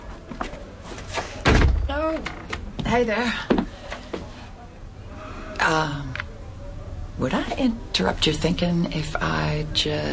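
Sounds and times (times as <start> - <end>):
wooden door opening with a heavy thud: 1.4 - 1.9
speech: 1.9 - 3.6, 5.7 - 6.2, 7.2 - 10.1.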